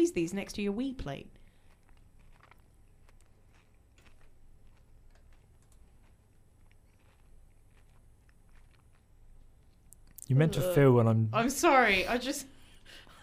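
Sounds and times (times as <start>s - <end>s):
speech: 0.0s - 1.4s, 10.3s - 13.2s
person chewing food with soft crunches: 1.3s - 10.6s.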